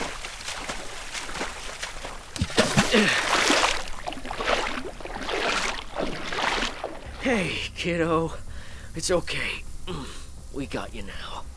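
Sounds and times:
paddles pulling a small boat through water: 0.0s - 7.3s
speech: 2.9s - 3.3s, 7.3s - 11.4s.

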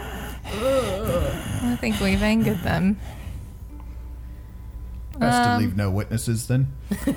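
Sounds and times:
person imitating raspy breathing of angry creatures: 0.0s - 3.2s
speech: 1.6s - 3.2s, 5.2s - 7.1s.

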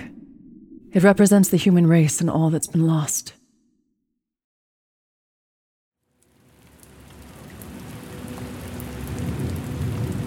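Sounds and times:
speech: 0.9s - 3.4s
heavy rain pouring on a hillside: 6.2s - 10.2s
deep rumbling of thunder: 7.7s - 10.2s.

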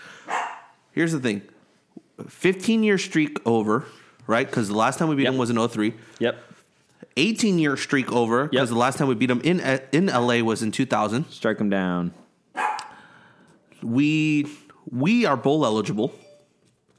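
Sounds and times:
faint noise: 0.0s - 16.9s
dog barking sharply: 0.2s - 0.8s, 12.6s - 13.0s
speech: 1.0s - 1.6s, 2.2s - 6.5s, 7.2s - 12.2s, 13.8s - 16.2s.

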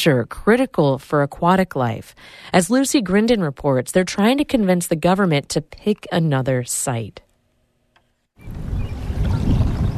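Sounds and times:
speech: 0.0s - 7.3s
steady low rumble of water and wind around a small drifting boat: 8.4s - 9.9s.

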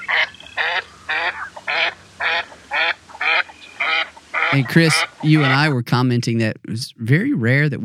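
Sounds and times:
female northern pintail duck giving flight quacks: 0.0s - 5.8s
speech: 4.5s - 7.8s.

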